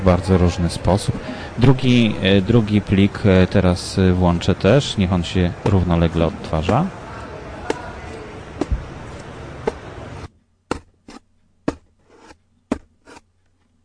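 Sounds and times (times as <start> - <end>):
speech: 0.0 - 7.0
knife cutting cardboard: 10.7 - 13.3.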